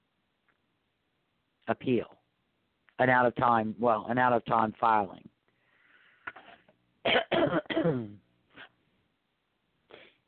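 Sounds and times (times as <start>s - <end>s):
speech: 1.7s - 2.2s, 3.0s - 5.3s, 7.6s - 8.2s
person having a coughing fit: 7.0s - 8.7s.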